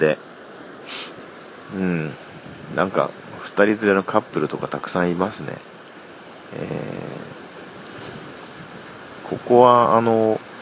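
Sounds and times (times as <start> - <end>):
speech: 0.0 - 0.3, 1.7 - 5.7, 6.5 - 7.3, 9.3 - 10.4
sea waves at a beach: 0.0 - 10.6
wind buffeting the microphone: 1.6 - 5.5, 6.5 - 10.6.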